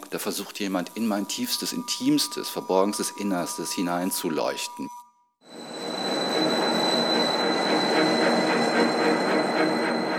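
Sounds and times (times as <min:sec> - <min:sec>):
speech: 0:00.1 - 0:05.0
high-pitched train wheel squeal: 0:01.0 - 0:10.1
train rolling along the rails: 0:05.5 - 0:10.1.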